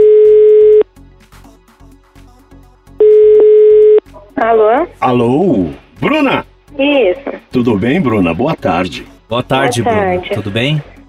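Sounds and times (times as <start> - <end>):
loud steady electronic telephone tone while a call is being placed: 0.0 - 0.8, 3.0 - 4.1
speech: 4.4 - 10.9.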